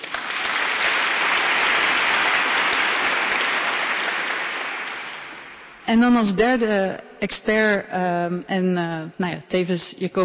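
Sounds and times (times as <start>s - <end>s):
audience applause: 0.0s - 5.6s
speech: 5.9s - 10.2s.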